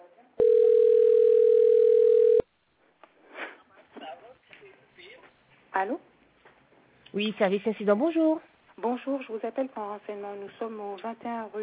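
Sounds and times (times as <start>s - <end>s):
steady telephone tone while call is transferred to an advisor: 0.4s - 2.4s
speech: 5.8s - 6.1s, 7.2s - 11.6s.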